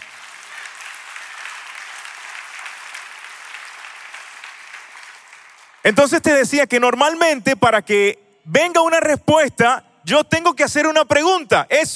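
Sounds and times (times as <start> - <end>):
congregation applauding: 0.0 - 6.9
speech: 5.8 - 11.9.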